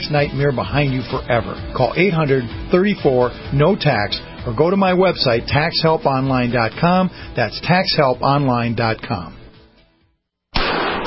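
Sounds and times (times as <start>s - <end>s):
speech: 0.1s - 9.4s
.44 Magnum pistol gunshot: 10.6s - 11.0s.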